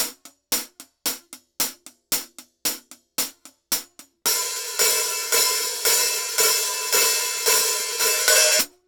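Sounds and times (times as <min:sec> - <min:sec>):
hi-hats: 0:00.0 - 0:08.7
cymbals: 0:04.3 - 0:08.7.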